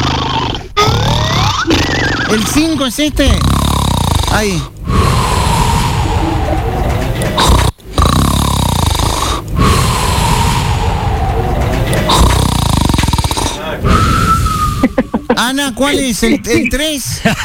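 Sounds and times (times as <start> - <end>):
loud harsh snoring: 0.0 - 6.3, 7.2 - 10.9, 11.9 - 14.2
speech: 2.3 - 3.6, 4.3 - 5.1, 15.3 - 17.4
laughter: 5.8 - 7.4, 14.8 - 17.4.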